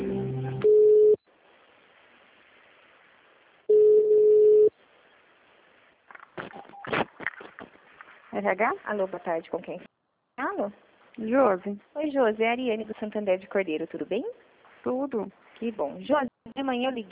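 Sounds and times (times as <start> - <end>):
telephone line beeps during bank call transfer: 0.6 - 1.2, 3.7 - 4.7
speech: 8.4 - 9.9, 10.6 - 17.1.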